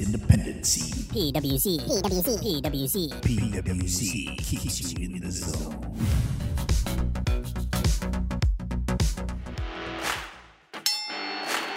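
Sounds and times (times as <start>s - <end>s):
speech: 0.1s - 6.3s
punchy driving music with repeated heavy hits: 5.6s - 10.4s
loud bright bell clang: 10.8s - 11.7s.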